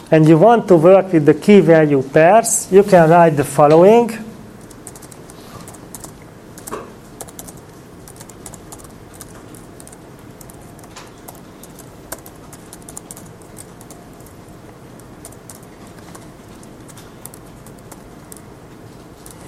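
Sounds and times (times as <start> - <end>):
speech: 0.1 - 4.3
computer keyboard typing code: 4.6 - 19.4.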